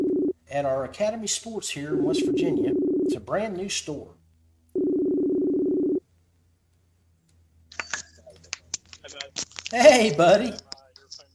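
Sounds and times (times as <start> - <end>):
outgoing phone call electronic ringing tone: 0.0 - 0.3, 1.9 - 3.1, 4.8 - 6.0
speech: 0.5 - 4.2, 9.7 - 10.7
handling noises: 7.7 - 11.3.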